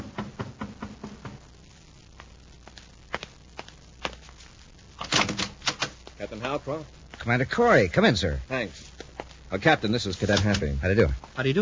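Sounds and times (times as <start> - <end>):
sharp knocks at a room door: 0.0 - 1.4
speech: 6.3 - 8.9, 9.5 - 11.5.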